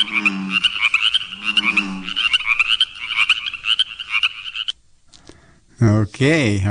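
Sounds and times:
dense chorus of small frogs trilling and creaking: 0.0s - 4.8s
speech: 5.8s - 6.7s.

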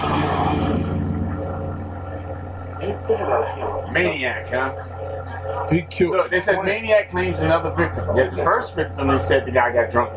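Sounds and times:
deep rumbling roar: 0.0s - 9.0s
speech: 2.9s - 10.1s.

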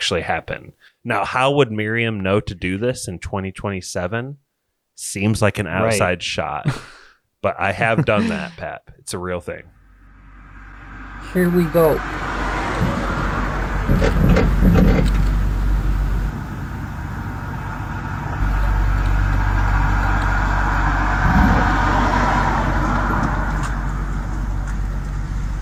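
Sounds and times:
speech: 0.0s - 4.4s, 5.0s - 9.8s, 11.3s - 12.9s, 14.0s - 14.8s
laughter: 5.8s - 7.0s, 7.6s - 8.7s
car rolling in gear: 9.7s - 25.6s.

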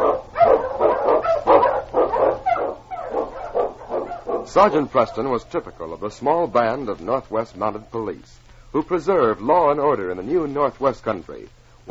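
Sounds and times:
Eskimo sled dog barking: 0.0s - 6.0s
speech: 4.5s - 11.8s.

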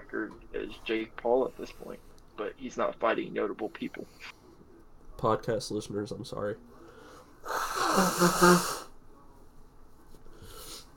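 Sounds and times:
speech: 0.3s - 4.4s, 5.2s - 6.7s, 7.4s - 8.8s
person blowing their nose: 7.5s - 8.9s.

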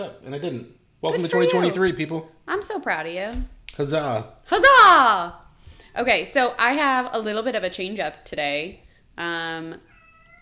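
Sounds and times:
speech: 0.0s - 5.4s, 6.0s - 9.9s
cat meowing while being picked up: 1.1s - 1.8s, 9.8s - 10.4s.

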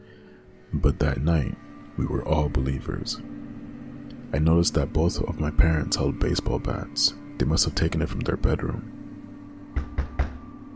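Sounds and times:
speech: 0.7s - 3.4s, 4.3s - 9.0s
knocking on a door: 9.7s - 10.5s.

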